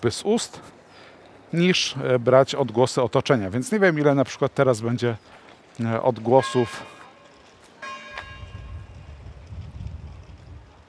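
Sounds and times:
speech: 0.0 - 0.8, 1.5 - 7.0
church bell ringing outdoors: 6.1 - 9.1
low rumble of wind on the microphone: 8.1 - 10.8.

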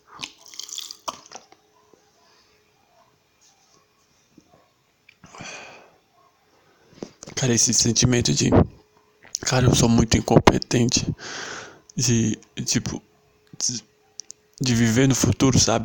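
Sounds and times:
person drinking water in sloshing gulps: 0.1 - 1.4
speech: 7.4 - 8.7, 9.5 - 13.9, 14.6 - 15.8.

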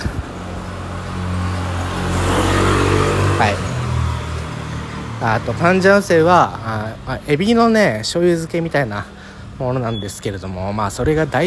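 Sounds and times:
faint street background: 0.0 - 11.4
motorcycle engine passing: 0.4 - 5.8
speech: 5.3 - 11.4.

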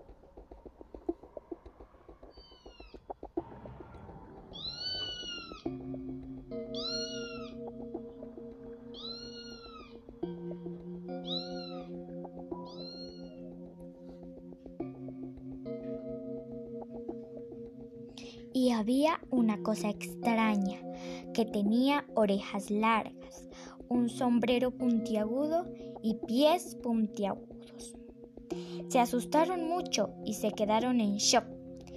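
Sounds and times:
black cats meowing and caterwauling: 2.3 - 3.0, 4.0 - 5.8, 6.8 - 7.7, 8.8 - 10.0, 11.2 - 12.0, 12.6 - 13.5
steady droning musical backdrop: 3.4 - 31.9
speech: 18.8 - 20.8, 21.4 - 27.5, 28.9 - 31.5.

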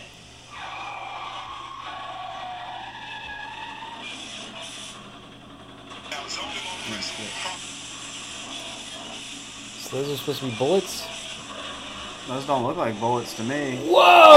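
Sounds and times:
tires screeching as cars skid during a stunt show: 0.5 - 4.9
speech: 6.3 - 7.7, 9.9 - 11.1, 12.2 - 14.3.

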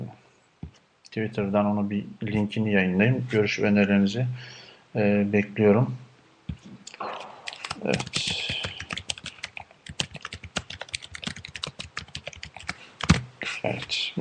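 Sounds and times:
speech: 1.2 - 6.0, 7.8 - 8.5
computer keyboard typing: 7.1 - 13.3.

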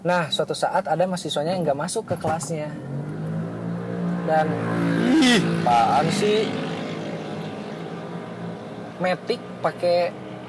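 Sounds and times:
speech: 0.0 - 3.1, 4.3 - 6.6, 9.0 - 10.2
motorcycle with noisy exhaust rumbling: 2.2 - 10.4.

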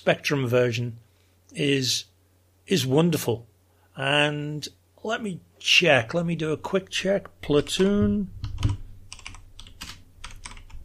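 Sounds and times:
speech: 0.0 - 2.1, 2.7 - 8.4
low hum: 0.0 - 10.8
computer keyboard keystrokes: 7.6 - 10.8.

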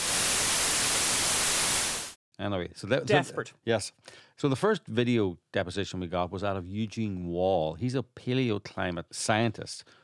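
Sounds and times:
white noise static: 0.0 - 2.2
speech: 2.4 - 10.0.

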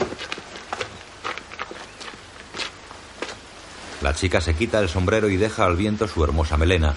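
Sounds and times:
hoof-like clops of horses: 0.0 - 3.4
footsteps and shuffling on dirt or gravel by a river: 0.0 - 4.0
speech: 4.0 - 6.9.

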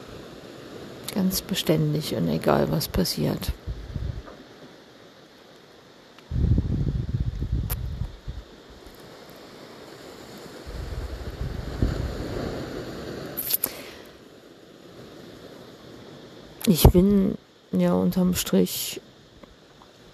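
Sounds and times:
ocean waves: 0.0 - 6.1, 8.5 - 16.6
speech: 1.2 - 3.7, 16.7 - 19.0
wind buffeting the microphone: 2.8 - 4.4, 6.3 - 8.5, 10.6 - 12.7.

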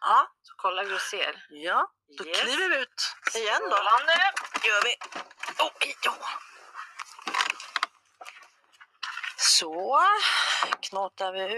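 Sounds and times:
speech: 0.6 - 6.5, 9.6 - 11.5
small dog scrabbling as it is let out: 3.2 - 9.4.

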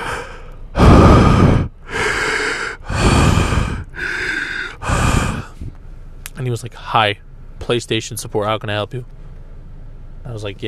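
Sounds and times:
voice imitating heavy breathing into a microphone: 0.0 - 5.8
speech: 6.4 - 9.2, 10.2 - 10.6.

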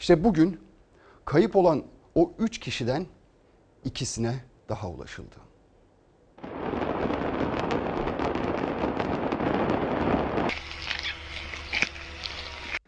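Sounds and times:
speech: 0.0 - 0.6, 1.3 - 3.2, 3.8 - 5.5
fireworks factory explosion with crackling fireworks bursts and pops: 6.4 - 12.8.

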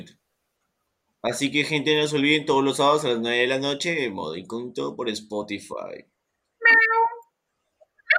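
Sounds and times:
speech: 1.2 - 6.1
cat meowing: 6.6 - 7.2.

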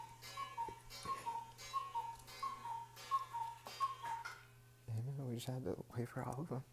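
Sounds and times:
cuckoo clock two-note calls: 0.0 - 4.5
faint low hum: 0.0 - 6.7
speech: 5.4 - 6.7.

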